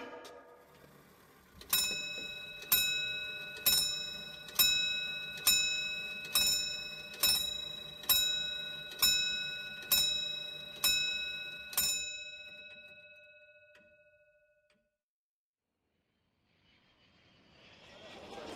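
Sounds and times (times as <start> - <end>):
clock striking the hour with deep resonant gong chimes: 1.6 - 12.9.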